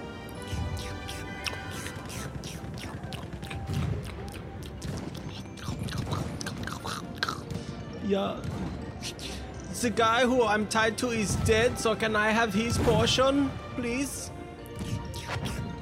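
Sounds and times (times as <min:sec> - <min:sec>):
people chewing and crunching food during a tasting: 0:00.3 - 0:07.8, 0:14.7 - 0:15.8
speech: 0:08.1 - 0:08.6, 0:09.8 - 0:14.2.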